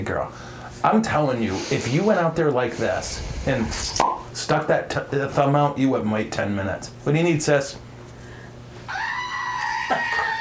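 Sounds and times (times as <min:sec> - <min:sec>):
speech: 0:00.0 - 0:07.8
goat screaming: 0:08.9 - 0:10.4.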